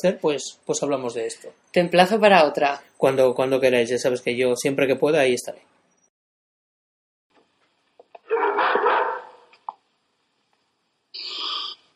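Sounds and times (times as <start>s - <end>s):
speech: 0.0s - 5.7s
frightened dog barking with whining bursts: 8.3s - 9.5s.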